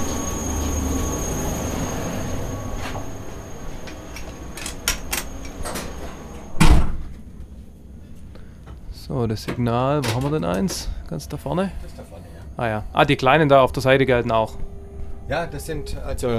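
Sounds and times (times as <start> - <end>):
rumbling drone inside a moving electric locomotive: 0.0 - 16.3
heavy door-like clunk inside an electric locomotive: 4.6 - 7.2
speech: 9.2 - 14.6, 15.3 - 16.3.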